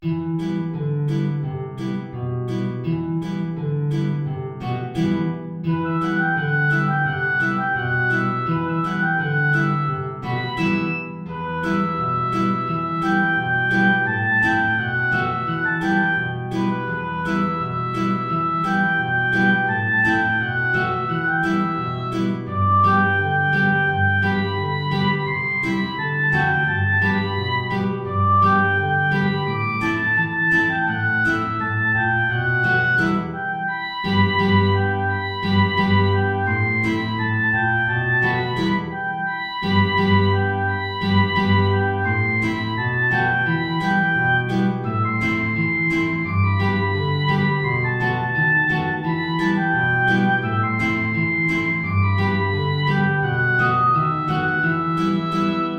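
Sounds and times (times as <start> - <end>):
high guitar: 0.0 - 55.7
high oboe: 4.7 - 55.7.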